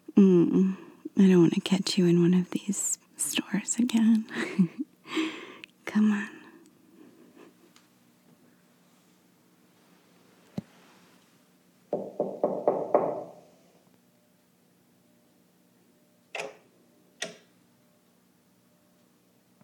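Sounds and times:
quiet room hum: 0:00.0 - 0:19.6
speech: 0:00.2 - 0:05.3
knocking on a door: 0:11.9 - 0:13.4.

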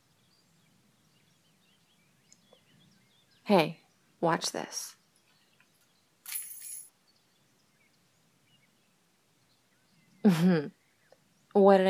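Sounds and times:
speech: 0:03.5 - 0:05.0, 0:10.2 - 0:10.8, 0:11.6 - 0:11.8
car keys jingling: 0:06.2 - 0:06.9.

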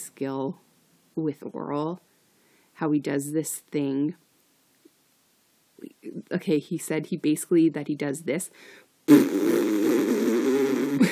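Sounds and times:
speech: 0:00.2 - 0:02.1, 0:02.8 - 0:04.2, 0:05.8 - 0:09.6
mouth blowing a raspberry imitating a fart: 0:09.1 - 0:11.1.

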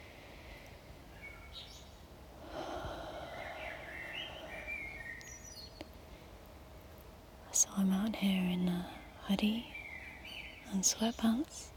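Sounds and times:
soft steady hiss: 0:00.0 - 0:11.7
birds chirping outdoors: 0:01.1 - 0:06.0, 0:07.5 - 0:11.6
speech: 0:07.7 - 0:09.7, 0:10.7 - 0:11.7.

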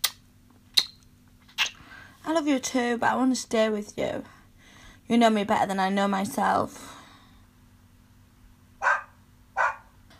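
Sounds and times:
speech: 0:02.3 - 0:04.4, 0:05.1 - 0:06.9
small dog barking: 0:08.8 - 0:10.0.

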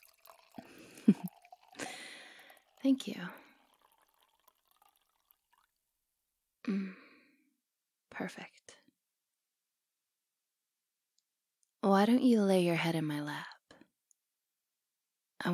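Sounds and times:
wine pouring into a glass: 0:00.0 - 0:05.8
speech: 0:01.1 - 0:01.3, 0:02.8 - 0:03.4, 0:06.7 - 0:07.0, 0:08.2 - 0:08.6, 0:11.9 - 0:13.5
person whispering: 0:08.2 - 0:08.7.

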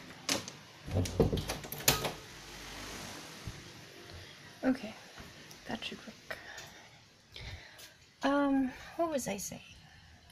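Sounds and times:
door swinging and clunking shut: 0:00.3 - 0:02.2
speech: 0:01.0 - 0:01.6, 0:04.7 - 0:05.0, 0:09.2 - 0:09.7.

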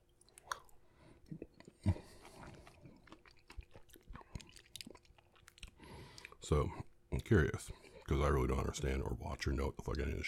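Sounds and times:
person eating an orange, chewing and biting: 0:00.0 - 0:06.4
speech: 0:06.5 - 0:10.2.

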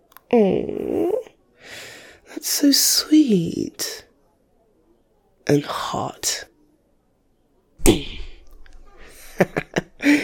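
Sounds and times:
speech: 0:00.3 - 0:01.1, 0:02.4 - 0:04.1, 0:05.5 - 0:06.5
sharp loud slap: 0:07.8 - 0:08.5
laughter: 0:09.0 - 0:10.2.

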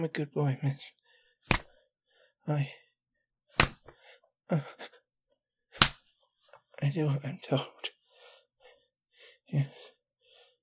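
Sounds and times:
speech: 0:00.0 - 0:01.6, 0:02.4 - 0:02.8, 0:04.5 - 0:05.0, 0:06.8 - 0:08.0, 0:09.5 - 0:09.9
sharp loud slaps on skin: 0:01.5 - 0:01.8, 0:03.6 - 0:03.9, 0:05.8 - 0:06.1.

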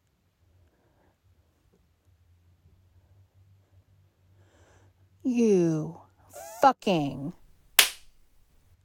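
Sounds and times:
speech: 0:05.3 - 0:06.0, 0:06.6 - 0:07.4
sharp crisp slap: 0:07.0 - 0:08.5.

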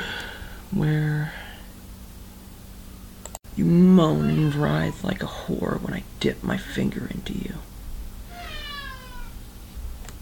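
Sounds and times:
speech: 0:00.7 - 0:01.4, 0:03.6 - 0:07.7
cat meowing: 0:04.0 - 0:05.0, 0:08.3 - 0:09.4.

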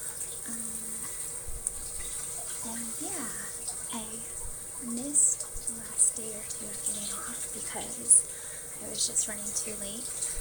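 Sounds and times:
shower water running during an afternoon shower: 0:00.0 - 0:10.3
speech: 0:06.4 - 0:10.3.

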